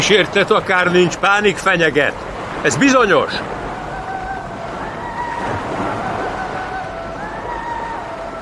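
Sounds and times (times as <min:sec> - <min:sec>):
speech: 0:00.0 - 0:03.6
sea waves rumbling around a ship: 0:00.0 - 0:08.4
wind whistling: 0:00.0 - 0:08.4.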